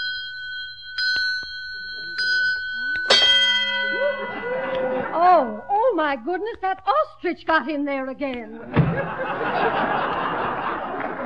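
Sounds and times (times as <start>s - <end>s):
small bell on an automatic egg-counting device ringing: 0.0s - 6.1s
laughter: 3.8s - 5.6s, 8.5s - 11.2s
speech: 5.3s - 10.2s.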